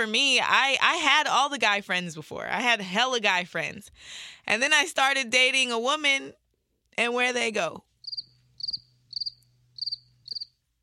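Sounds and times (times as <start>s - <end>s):
speech: 0.0s - 6.4s, 7.0s - 7.9s
crickets chirping: 8.0s - 10.5s.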